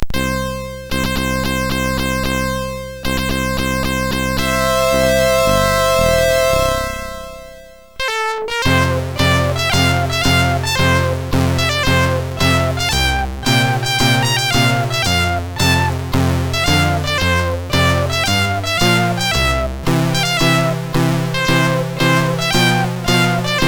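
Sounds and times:
national anthem played on a MOS6581R4 sound chip: 0:00.0 - 0:23.6.

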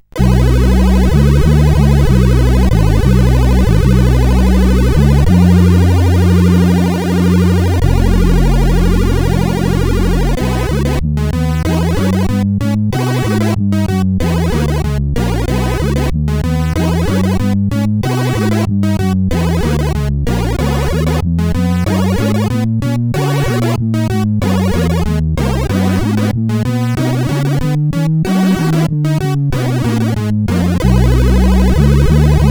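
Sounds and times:
walking bass line: 0:00.0 - 0:32.4.

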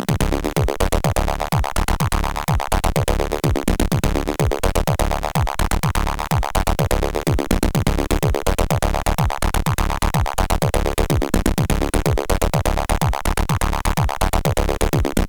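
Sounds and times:
small techno piece on CSG8580R5: 0:00.1 - 0:15.2.

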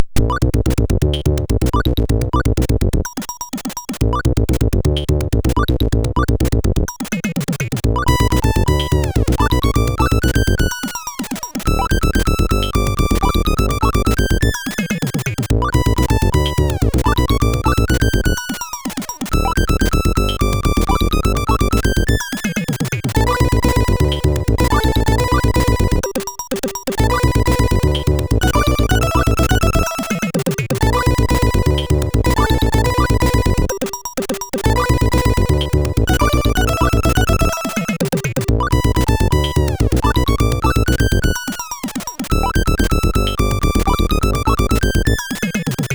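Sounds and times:
chiptune drum break from a SID CSG8580R5 chip: 0:00.1 - 0:45.9.

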